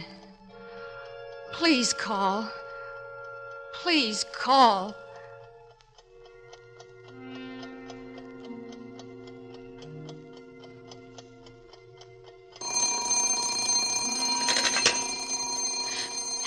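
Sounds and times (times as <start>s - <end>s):
clock ticking: 0.0s - 16.4s
speech: 1.6s - 2.6s, 3.8s - 5.0s
alarm clock bell ringing: 12.6s - 16.4s.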